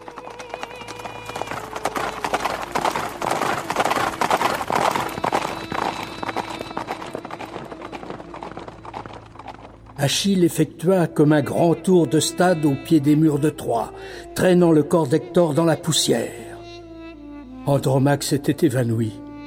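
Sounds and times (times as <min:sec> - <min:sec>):
horses galloping at full pace: 0:00.0 - 0:10.4
speech: 0:10.0 - 0:16.4, 0:17.6 - 0:19.2.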